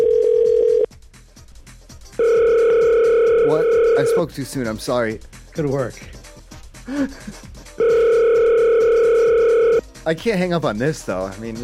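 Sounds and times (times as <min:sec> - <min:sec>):
telephone ringing with electronic tone: 0:00.0 - 0:00.9, 0:02.2 - 0:04.3, 0:07.8 - 0:09.8
speech: 0:04.2 - 0:06.2, 0:06.9 - 0:07.6, 0:10.0 - 0:11.6.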